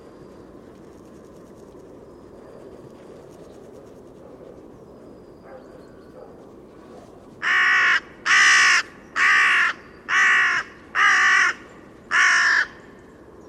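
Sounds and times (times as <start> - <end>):
bird cawing: 7.4 - 12.8.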